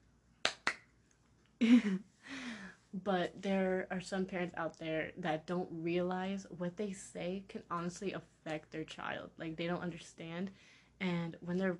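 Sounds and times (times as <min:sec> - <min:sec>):
sharp hand claps: 0:00.4 - 0:00.9
speech: 0:01.6 - 0:02.1, 0:02.9 - 0:11.7.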